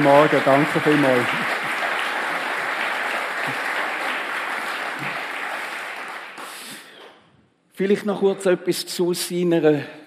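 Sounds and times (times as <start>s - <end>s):
speech: 0.0s - 1.4s, 7.8s - 10.0s
sizable audience applauding: 0.0s - 7.0s.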